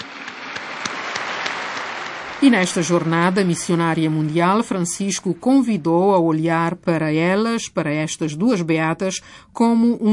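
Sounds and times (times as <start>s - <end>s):
crowd applauding two newly beatified women: 0.0s - 5.7s
speech: 2.4s - 10.1s.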